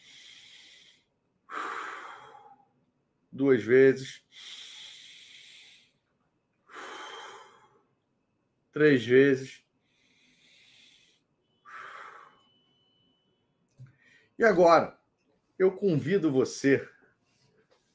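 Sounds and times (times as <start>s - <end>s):
deep breath in and out during a guided visualization: 0.0s - 2.8s, 4.2s - 8.0s, 9.6s - 12.7s, 13.9s - 14.4s
speech: 3.3s - 4.6s, 8.8s - 9.6s, 14.4s - 15.0s, 15.6s - 16.9s.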